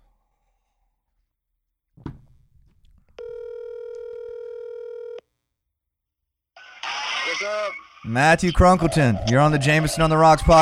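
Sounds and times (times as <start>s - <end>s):
buzzy telephone tone: 3.2s - 5.2s
speech: 7.4s - 10.5s.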